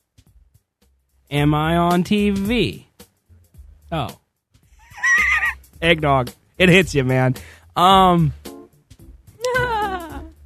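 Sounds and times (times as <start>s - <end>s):
speech: 1.3s - 2.9s, 3.9s - 4.2s, 5.8s - 8.4s
goat bleating: 4.8s - 5.6s.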